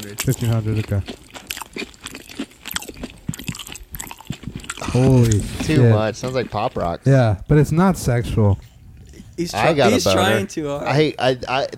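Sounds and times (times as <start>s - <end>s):
speech: 0.0s - 1.2s, 5.0s - 8.7s, 9.4s - 11.7s
wet mouth sounds: 0.0s - 7.0s
crunching and chewing salmon patties and mashed potatoes: 0.0s - 7.1s.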